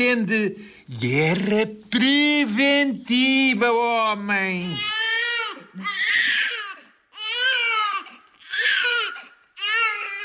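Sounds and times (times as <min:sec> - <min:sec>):
speech: 0:00.0 - 0:05.1, 0:05.8 - 0:06.1
newborn baby wailing in an ambulance at a maternity hospital: 0:04.6 - 0:10.2.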